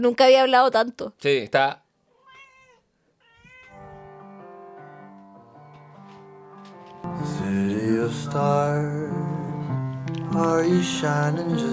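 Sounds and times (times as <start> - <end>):
speech: 0.0 - 1.8, 7.0 - 9.2, 10.3 - 11.7
cat meowing: 2.1 - 6.0
piano-like music: 3.7 - 11.7.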